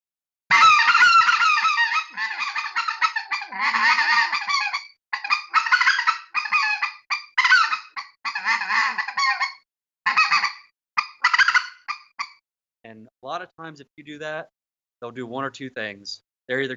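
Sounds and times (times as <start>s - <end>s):
goose honks and clucks blown on a goose call: 0.5s - 12.4s
speech: 3.5s - 4.0s, 13.3s - 16.7s.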